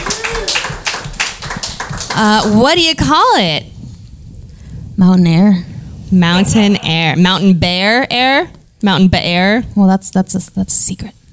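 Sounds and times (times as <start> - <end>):
small group applauding: 0.0 - 2.8
speech: 2.2 - 3.7, 5.0 - 11.2.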